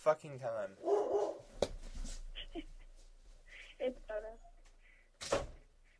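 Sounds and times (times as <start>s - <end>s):
speech: 0.0s - 1.4s, 3.8s - 4.4s
several dog barks with whimpering: 0.8s - 1.5s.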